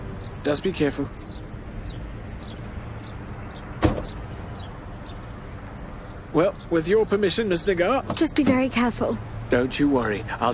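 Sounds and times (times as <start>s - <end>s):
speech: 0.4s - 1.2s, 6.3s - 10.5s
car door shutting: 3.8s - 4.2s.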